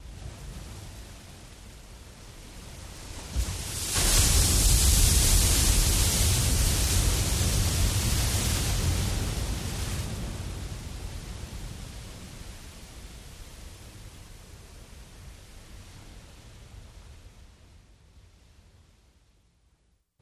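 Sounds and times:
single wave crashing in surf: 3.1 - 11.5.

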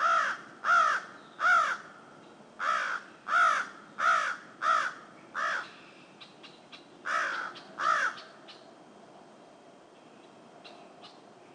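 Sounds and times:
crow giving harsh caws: 0.0 - 2.0, 2.6 - 5.8, 7.0 - 8.5.

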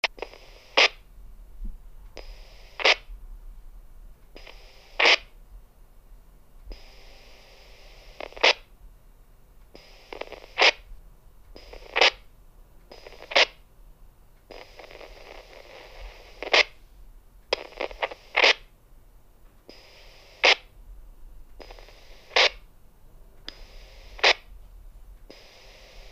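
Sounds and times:
walkie-talkie static: 0.0 - 1.0, 2.2 - 3.1, 4.4 - 5.4, 6.7 - 8.7, 9.8 - 10.9, 11.6 - 12.3, 12.9 - 13.6, 14.5 - 16.8, 17.5 - 18.7, 19.7 - 20.7, 21.6 - 22.7, 23.5 - 24.5, 25.3 - 26.1.

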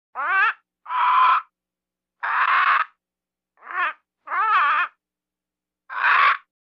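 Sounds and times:
various parrot calls: 0.1 - 1.5, 2.2 - 3.0, 3.6 - 5.0, 5.9 - 6.5.

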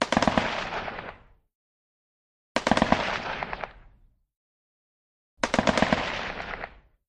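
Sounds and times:
AK47 rifle burst fire: 0.0 - 1.2, 2.6 - 3.9, 5.4 - 6.9.

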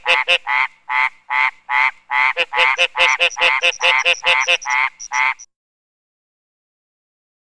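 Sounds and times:
frog giving a long rapid series of croaks: 0.2 - 5.5.

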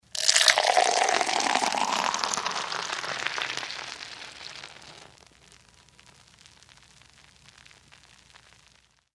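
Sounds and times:
beer pouring: 0.0 - 5.4.

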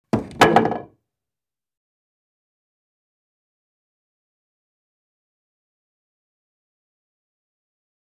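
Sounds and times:
wooden baseball bat: 0.1 - 0.9.

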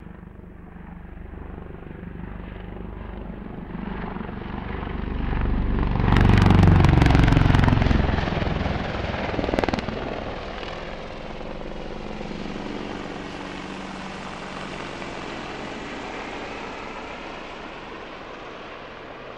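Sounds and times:
AH-64 Apache helicopter banking right: 0.0 - 19.3.

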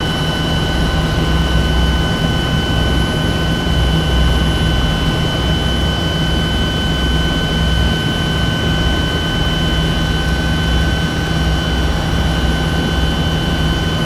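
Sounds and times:
AH-64 Apache helicopter interior noise: 0.0 - 14.0.

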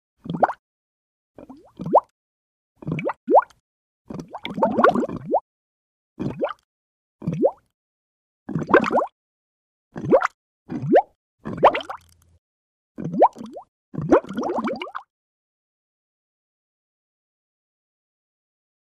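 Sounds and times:
big slow bubbles gurgling up: 0.2 - 0.6, 1.4 - 2.1, 2.8 - 5.4, 6.2 - 7.7, 8.5 - 9.2, 9.9 - 12.2, 13.0 - 15.1.

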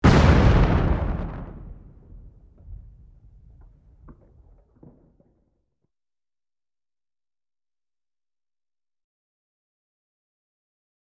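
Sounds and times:
explosion: 0.0 - 5.3.

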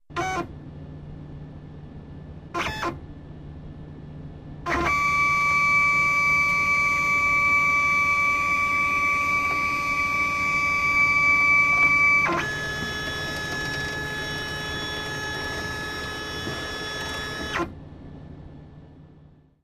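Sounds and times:
computer scanner: 4.9 - 17.7.

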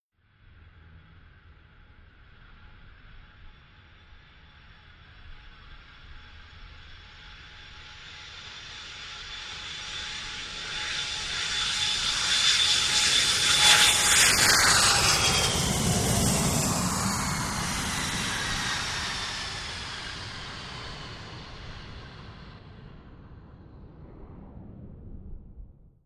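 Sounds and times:
large jet landing touchdown: 6.9 - 26.0.

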